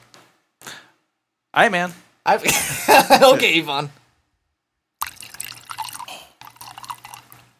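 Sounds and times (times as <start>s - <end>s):
speech: 1.6s - 4.0s
laughter: 2.5s - 3.5s
Kraken rum being poured into a glass: 5.0s - 7.5s.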